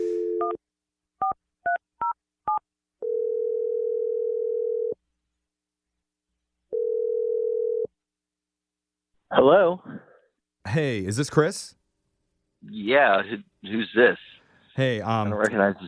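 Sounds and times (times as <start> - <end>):
long steady telephone tones: 0.0 - 0.6, 2.5 - 5.0, 6.7 - 7.9
telephone dial tone: 3.0 - 5.0, 6.7 - 7.9
speech: 9.4 - 10.0, 10.6 - 11.8, 12.6 - 14.2, 14.8 - 15.8.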